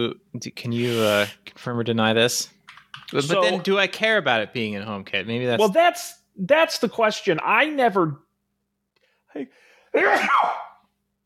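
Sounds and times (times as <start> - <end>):
speech: 0.0 - 8.2, 9.3 - 10.7
sharp inhaled breath: 0.8 - 1.4
person sneezing: 9.9 - 10.8.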